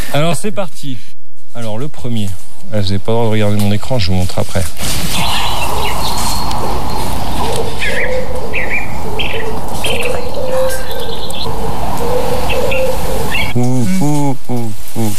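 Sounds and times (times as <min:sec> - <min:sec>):
speech: 0:00.1 - 0:05.9, 0:13.6 - 0:15.1
scattered higher bird chirps: 0:05.1 - 0:13.6
common wood pigeon cooing: 0:05.1 - 0:15.1.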